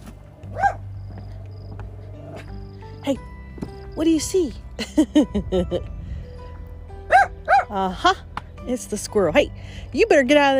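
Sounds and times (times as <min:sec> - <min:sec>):
dog barking: 0:00.5 - 0:00.8, 0:07.1 - 0:07.7
speech: 0:03.0 - 0:03.3, 0:04.0 - 0:05.9, 0:07.7 - 0:10.5.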